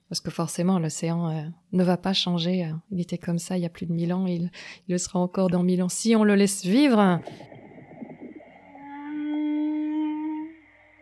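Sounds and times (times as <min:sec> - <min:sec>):
speech: 0:00.1 - 0:07.6
humpback whale song unit: 0:08.4 - 0:10.9.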